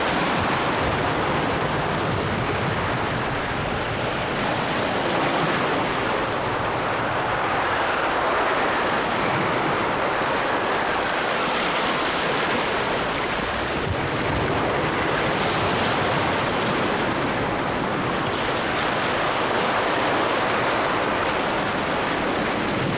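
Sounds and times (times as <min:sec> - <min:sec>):
stormy sea water: 0:00.0 - 0:22.9.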